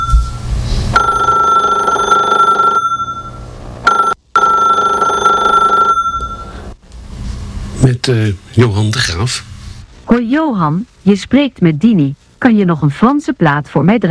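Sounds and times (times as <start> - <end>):
telephone ringing in long electronic bursts: 1.0 - 6.7
speech: 8.1 - 9.5, 10.1 - 14.0.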